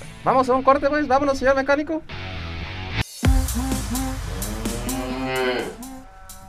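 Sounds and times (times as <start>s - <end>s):
speech: 0.2s - 2.2s
cow mooing: 4.0s - 6.4s.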